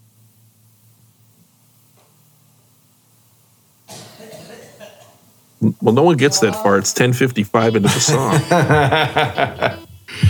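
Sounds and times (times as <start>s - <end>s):
harsh cough on a live band studio recording: 3.9s - 5.1s, 7.8s - 9.0s, 10.1s - 10.2s
speech: 5.6s - 10.2s
laughter: 5.7s - 9.9s.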